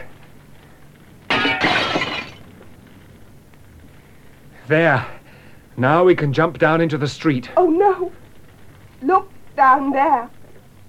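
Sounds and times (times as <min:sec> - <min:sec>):
glass shards tinkling and scattering: 0:01.3 - 0:02.4
window pane shattering: 0:01.3 - 0:02.5
speech: 0:04.7 - 0:05.2, 0:05.8 - 0:08.1, 0:09.0 - 0:10.4.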